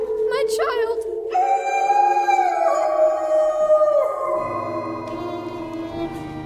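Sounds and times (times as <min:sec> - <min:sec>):
several wolves howling coming out of a forest: 0:00.0 - 0:06.4
speech: 0:00.5 - 0:01.0.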